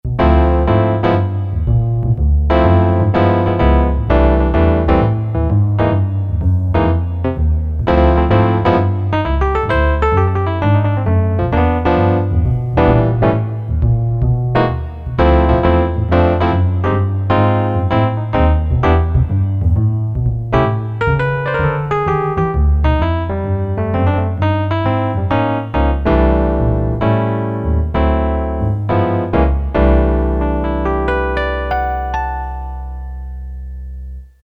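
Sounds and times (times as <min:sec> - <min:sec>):
E.P. bass on a Korg DSS-1 synthesizer: 0:00.0 - 0:34.4.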